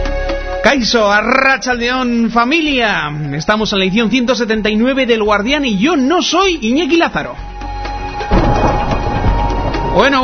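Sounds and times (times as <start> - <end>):
speech: 0.6 - 7.5, 10.0 - 10.2
thunder rumbling: 8.2 - 10.2.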